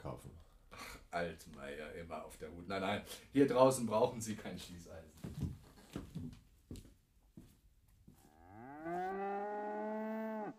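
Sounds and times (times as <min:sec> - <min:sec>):
speech: 0:01.2 - 0:05.5
cows mooing: 0:08.3 - 0:10.5.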